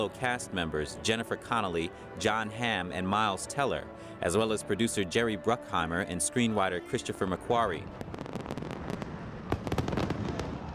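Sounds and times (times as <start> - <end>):
speech: 0.0 - 8.2
fireworks exploding at a festival: 7.8 - 10.7.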